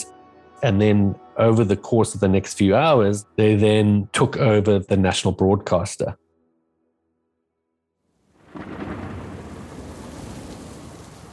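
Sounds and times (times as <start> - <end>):
speech: 0.6 - 6.2
steady rain pouring down at night in Harare Zimbabwe: 8.3 - 11.3
deep rolling rumble of thunder: 8.4 - 11.3.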